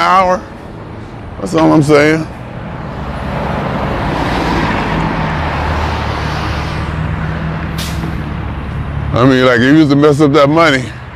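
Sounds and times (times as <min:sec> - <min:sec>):
speech: 0:00.0 - 0:00.6, 0:01.4 - 0:02.4, 0:09.2 - 0:11.0
bus engine roaring past on the road: 0:00.0 - 0:11.1
traffic noise: 0:00.0 - 0:11.1
bus air brakes hissing: 0:07.7 - 0:08.2.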